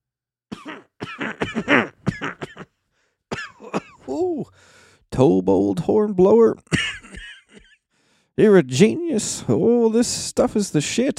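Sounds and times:
throaty voiced coughs: 0.5s - 4.5s, 6.6s - 7.8s
speech: 5.2s - 6.8s, 8.4s - 11.1s.

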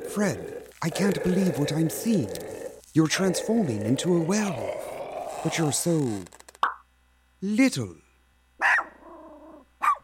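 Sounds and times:
speech: 0.2s - 6.4s, 7.4s - 8.0s
small puppy barking: 8.6s - 9.0s, 9.8s - 10.0s.

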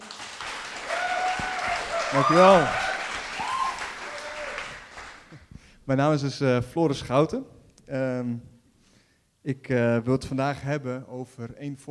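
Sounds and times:
room full of people applauding: 0.0s - 5.4s
speech: 2.1s - 2.8s, 5.9s - 8.5s, 9.4s - 11.8s.

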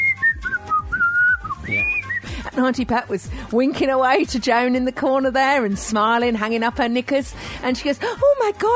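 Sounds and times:
woman whistling a tune in a shared back garden: 0.0s - 2.3s
speech: 2.6s - 8.7s.

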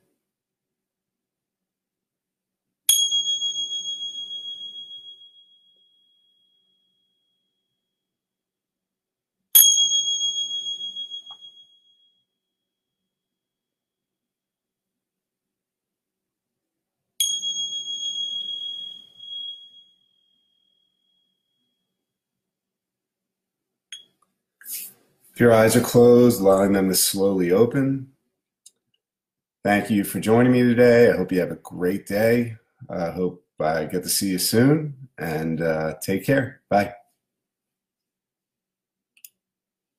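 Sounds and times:
meditation bell ringing: 2.9s - 7.9s, 9.6s - 12.4s, 17.2s - 21.8s
speech: 24.7s - 28.1s, 29.6s - 37.0s.

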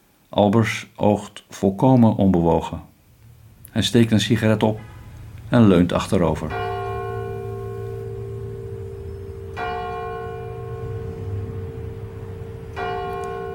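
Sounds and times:
speech: 0.3s - 2.9s, 3.7s - 4.9s, 5.5s - 6.7s
church bell tolling: 4.6s - 13.5s.

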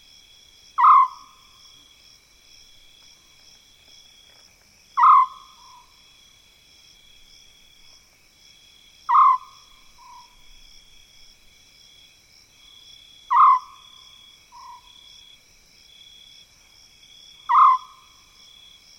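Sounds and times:
shrill insects in mopane woodland: 0.0s - 18.9s
African scops owl purring trill in mopane woodland: 0.8s - 1.3s, 5.0s - 5.9s, 9.1s - 10.3s, 13.3s - 13.8s, 17.5s - 18.0s.

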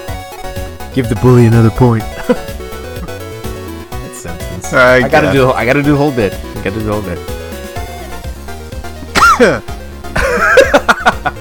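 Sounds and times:
speech: 1.0s - 2.6s, 4.7s - 7.3s, 9.4s - 9.8s
laughter: 2.0s - 3.4s, 9.2s - 11.3s
person coughing after inhaling air the wrong way: 9.1s - 9.6s.

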